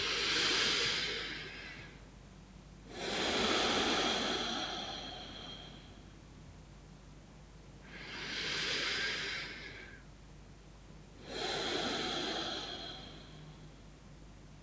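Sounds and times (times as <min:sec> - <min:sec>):
slow deep breathing through the nose: 0:00.0 - 0:02.0, 0:02.9 - 0:06.2, 0:07.8 - 0:10.1, 0:11.2 - 0:13.9.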